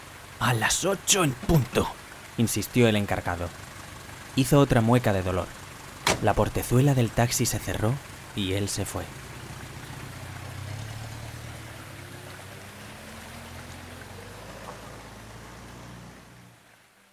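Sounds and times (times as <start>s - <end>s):
steady rain falling: 0.0s - 17.1s
speech: 0.4s - 3.7s, 4.4s - 5.6s, 6.2s - 9.2s.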